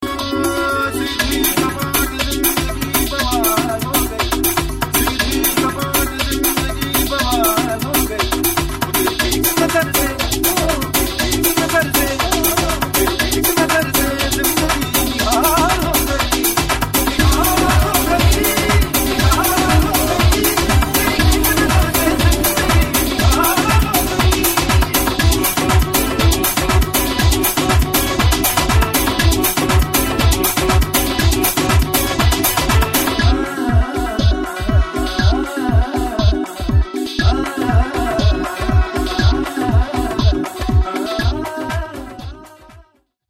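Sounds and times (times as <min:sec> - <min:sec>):
trance music mix: 0:00.0 - 0:42.7.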